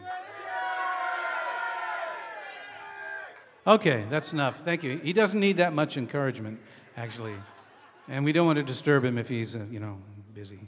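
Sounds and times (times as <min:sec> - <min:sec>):
audience yelling out a name in unison: 0:00.0 - 0:03.6
speech: 0:03.6 - 0:10.6
laughter: 0:03.7 - 0:10.0.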